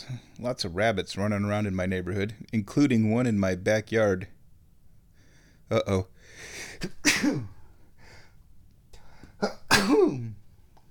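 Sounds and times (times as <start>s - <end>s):
speech: 0.0s - 4.4s, 5.7s - 7.6s, 9.4s - 10.4s
quiet breathing: 4.9s - 6.8s, 7.6s - 9.4s
person sneezing: 6.6s - 7.6s, 9.4s - 10.4s.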